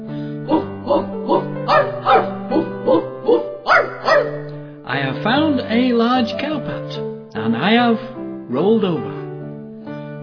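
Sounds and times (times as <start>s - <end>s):
dog barking: 0.5s - 4.5s
speech: 0.9s - 1.5s, 5.8s - 9.1s.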